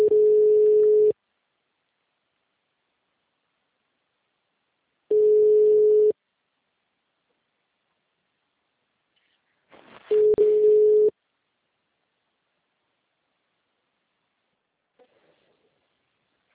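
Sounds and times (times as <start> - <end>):
ringback tone from a telephone call being placed: 0.0 - 1.1, 5.1 - 6.1, 10.1 - 11.1
noisy crackle: 9.7 - 10.2.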